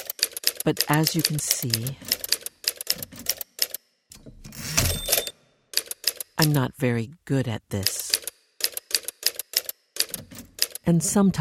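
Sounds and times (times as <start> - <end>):
typing on a typewriter during a musical performance piece: 0.0 - 3.8, 5.1 - 6.6, 8.1 - 10.8
speech: 0.6 - 2.2, 6.6 - 8.0, 10.9 - 11.3.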